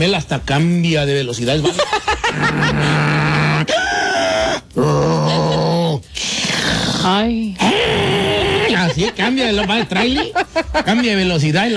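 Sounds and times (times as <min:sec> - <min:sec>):
speech: 0:00.0 - 0:03.2, 0:07.0 - 0:07.6, 0:09.0 - 0:11.7
laughter: 0:01.6 - 0:04.2, 0:08.0 - 0:11.7
voice imitating loud snoring: 0:02.4 - 0:03.8, 0:04.4 - 0:08.8.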